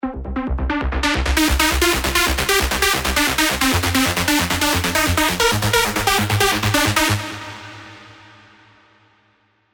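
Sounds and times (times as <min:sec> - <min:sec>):
tribal rave music: 0:00.0 - 0:08.2.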